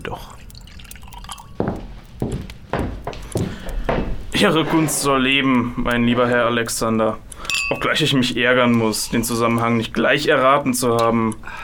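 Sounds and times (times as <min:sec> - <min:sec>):
speech: 0:00.0 - 0:00.4, 0:04.4 - 0:11.6
cognac glugging into a glass: 0:00.0 - 0:02.2.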